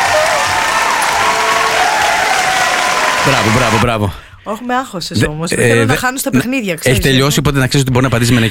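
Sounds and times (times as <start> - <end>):
studio audience applause: 0.0 - 4.0
speech: 3.2 - 8.4.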